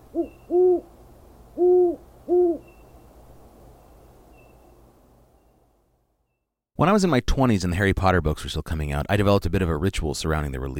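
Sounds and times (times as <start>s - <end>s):
owl hooting at night: 0.0s - 0.9s, 1.6s - 2.9s
quiet hiss: 0.0s - 7.2s
speech: 6.8s - 10.7s.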